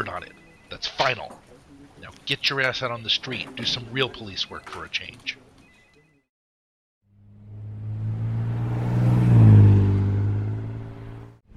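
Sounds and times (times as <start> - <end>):
speech: 0.8 - 1.4, 2.3 - 5.4
1986 Honda Civic accelerating hard as it drives away: 7.1 - 11.4.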